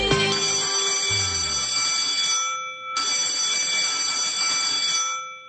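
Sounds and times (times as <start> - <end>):
electronic school bell ringing: 0.2 - 5.4.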